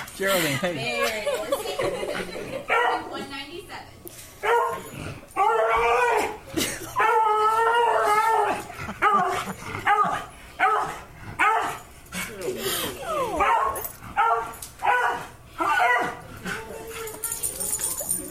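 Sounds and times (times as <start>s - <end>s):
speech: 0.2s - 6.7s
laughter: 0.3s - 3.2s, 8.5s - 9.8s
dog just out of urgent veterinary care howling and barking: 4.4s - 6.4s, 7.0s - 11.8s, 13.1s - 16.9s.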